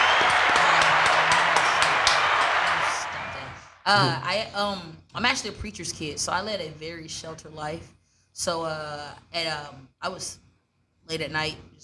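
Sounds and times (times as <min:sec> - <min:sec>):
small group applauding with hands clapping: 0:00.0 - 0:04.2
speech: 0:03.9 - 0:10.4, 0:11.1 - 0:11.8.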